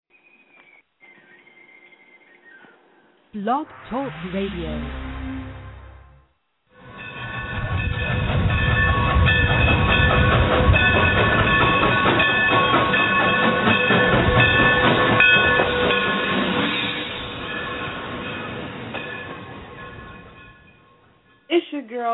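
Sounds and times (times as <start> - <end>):
speech: 3.3 - 5.1
train rumbling along the rails with clickety-clack: 6.8 - 21.5.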